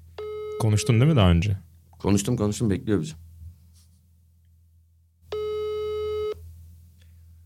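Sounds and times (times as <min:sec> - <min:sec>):
low hum: 0:00.0 - 0:07.4
speech: 0:00.6 - 0:03.2
telephone ringback tone on a phone line while calling a phone in Munich: 0:05.3 - 0:06.4.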